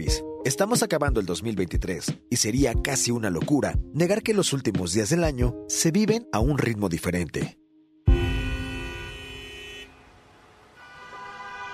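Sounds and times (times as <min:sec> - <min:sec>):
speech: 0:00.0 - 0:07.6
car horns honking in big-city traffic: 0:08.1 - 0:10.2, 0:10.8 - 0:11.7
low rumble of big-city traffic: 0:08.1 - 0:11.7.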